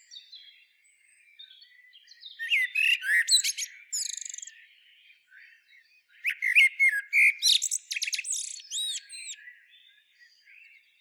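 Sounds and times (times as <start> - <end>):
common blackbird Turdus merula ticking and twittering: 2.4 - 4.6, 6.2 - 9.4.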